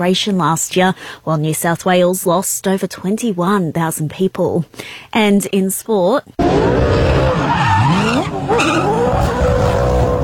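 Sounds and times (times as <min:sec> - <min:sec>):
speech: 0:00.0 - 0:09.8
Supercars race car engine roaring during celebratory skids: 0:06.4 - 0:10.2
race car tires screeching during celebratory skids: 0:06.4 - 0:10.2.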